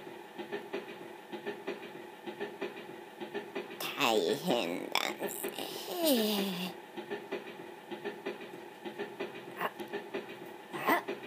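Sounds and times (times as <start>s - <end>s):
train rolling along the rails with clickety-clack: 0.0s - 11.2s
speech: 4.0s - 6.8s.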